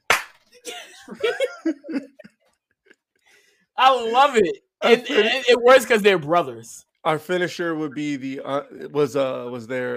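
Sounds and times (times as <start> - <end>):
sharp slap to the face: 0.1 - 0.4
speech: 0.6 - 2.2, 3.8 - 9.9
burst of laughter and excited vocal sounds: 0.6 - 2.5.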